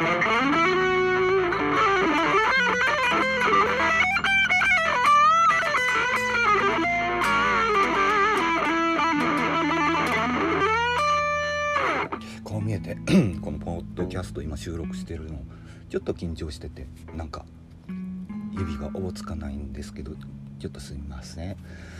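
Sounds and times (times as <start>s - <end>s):
distorted electric guitar playing an improvised solo in E minor: 0.0s - 12.3s
steady backing music: 0.0s - 21.9s
speech: 14.2s - 17.5s, 18.6s - 21.9s.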